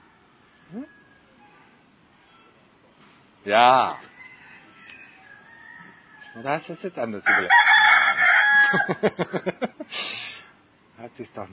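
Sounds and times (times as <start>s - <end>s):
rooster crowing: 0.0s - 1.5s, 3.8s - 9.2s
speech: 0.7s - 1.0s, 3.4s - 4.1s, 6.4s - 7.7s, 8.7s - 10.2s, 11.0s - 11.5s
laughter: 8.6s - 9.9s.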